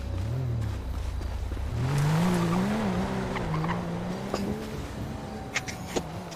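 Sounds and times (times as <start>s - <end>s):
BMW car engine revving in a video game: 0.0s - 6.3s
faint video game car tire squeal: 2.0s - 6.3s.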